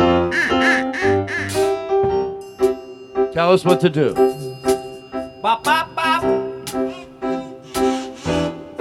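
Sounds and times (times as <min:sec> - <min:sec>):
duck whistle quacking: 0:00.2 - 0:01.8, 0:06.9 - 0:08.6
speech: 0:03.4 - 0:04.3, 0:05.5 - 0:06.4.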